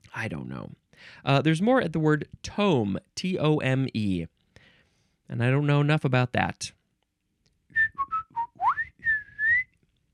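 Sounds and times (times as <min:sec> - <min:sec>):
speech: 0:00.2 - 0:04.3, 0:05.3 - 0:06.8
person whistling a short quick tune: 0:07.8 - 0:09.7.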